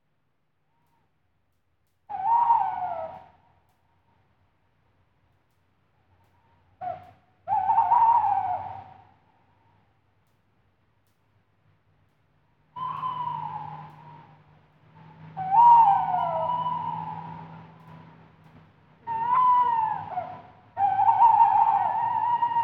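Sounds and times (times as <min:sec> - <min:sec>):
tawny owl hooting at night: 0:02.1 - 0:03.3, 0:06.8 - 0:09.1, 0:12.8 - 0:14.4, 0:15.4 - 0:17.9, 0:19.0 - 0:22.6.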